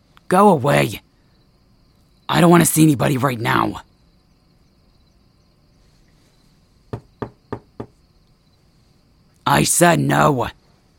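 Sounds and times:
speech: 0:00.3 - 0:01.1, 0:02.3 - 0:03.9, 0:09.5 - 0:10.6
sharp knocks on a door: 0:06.9 - 0:08.0.

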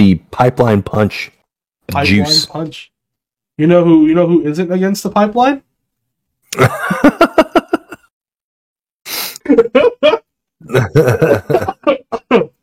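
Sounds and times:
speech: 0:00.0 - 0:02.9, 0:03.6 - 0:05.7, 0:06.5 - 0:07.6, 0:09.5 - 0:11.7
laughter: 0:06.6 - 0:08.1, 0:09.4 - 0:12.5
person coughing harshly: 0:10.6 - 0:12.6.

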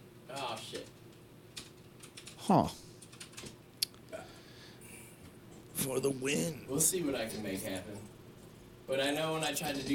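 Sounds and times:
speech: 0:00.3 - 0:01.0, 0:02.4 - 0:02.8, 0:05.8 - 0:08.1, 0:08.9 - 0:09.9
typing on a computer keyboard: 0:00.3 - 0:03.6.

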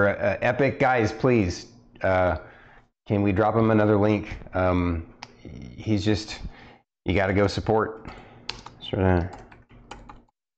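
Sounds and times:
speech: 0:00.0 - 0:02.5, 0:03.1 - 0:08.2, 0:08.9 - 0:09.4
typing on a computer keyboard: 0:08.5 - 0:10.3.

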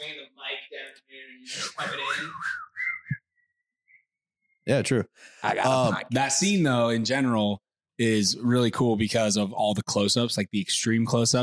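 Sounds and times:
speech: 0:01.0 - 0:02.6, 0:04.7 - 0:11.4
person whistling a short bouncy melody: 0:02.0 - 0:03.2.

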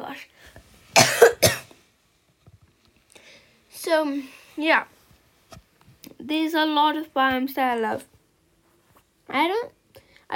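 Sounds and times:
harsh coughs: 0:01.0 - 0:01.7
speech: 0:03.8 - 0:05.0, 0:06.2 - 0:08.1, 0:09.3 - 0:10.3.

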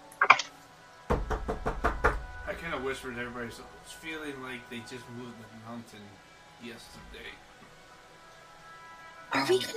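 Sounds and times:
firm knocking on a door: 0:01.1 - 0:02.4
speech: 0:02.6 - 0:07.5, 0:09.4 - 0:09.7.

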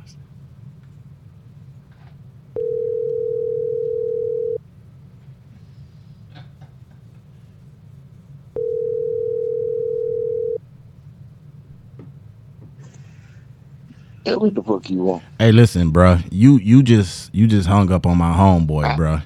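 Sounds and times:
faint noise: 0:00.0 - 0:19.2
telephone ringback tone while a call is placed: 0:02.6 - 0:04.6, 0:08.6 - 0:10.6
speech: 0:14.3 - 0:19.2.

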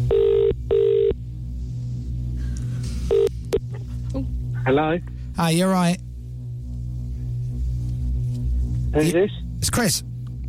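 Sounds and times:
telephone ringing tone heard down the line: 0:00.0 - 0:01.2, 0:03.1 - 0:03.3
low hum: 0:00.0 - 0:10.4
speech: 0:04.7 - 0:06.0, 0:09.0 - 0:10.1.

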